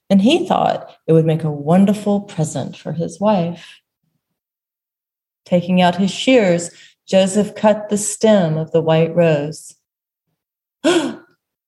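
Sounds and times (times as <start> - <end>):
speech: 0.1 - 3.8, 5.5 - 9.8, 10.8 - 11.2
person gasping: 10.8 - 11.3.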